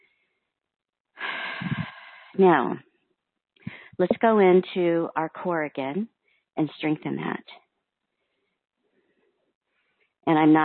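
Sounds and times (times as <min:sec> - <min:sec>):
deep breath in: 0:01.2 - 0:02.4, 0:03.7 - 0:04.0
speech: 0:02.4 - 0:02.9, 0:04.0 - 0:07.6, 0:10.3 - 0:10.6.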